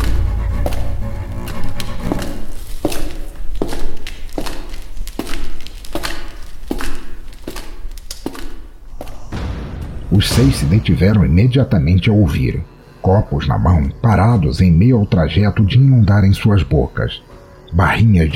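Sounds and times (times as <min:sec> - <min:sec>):
heavy footsteps inside a dark house: 0:00.0 - 0:12.1
speech: 0:10.2 - 0:18.3.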